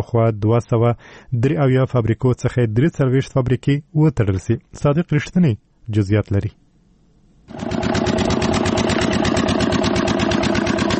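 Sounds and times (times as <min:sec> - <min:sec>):
speech: 0:00.0 - 0:06.6
generator powering a pipe-making factory in an industrial park: 0:07.5 - 0:10.9.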